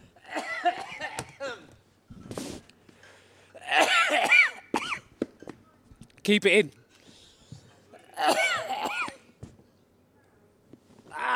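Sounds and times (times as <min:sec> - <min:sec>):
man clearing throat: 0:00.2 - 0:01.7, 0:03.6 - 0:05.0, 0:08.0 - 0:09.2
man coughing with something caught in his throat: 0:00.2 - 0:01.7, 0:03.6 - 0:05.0, 0:08.0 - 0:09.2
speech: 0:06.3 - 0:06.8.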